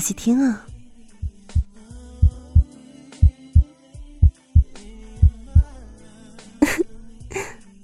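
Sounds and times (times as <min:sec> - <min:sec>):
speech: 0:00.0 - 0:00.7
loud lub-dub heartbeat: 0:01.2 - 0:03.6, 0:04.2 - 0:05.7.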